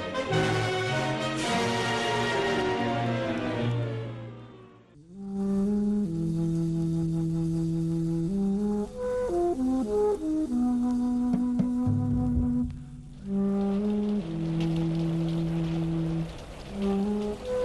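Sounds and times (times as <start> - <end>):
steady rain falling: 0.0 - 17.6
slow melodic music cue of sustained low and mid notes: 8.4 - 14.2.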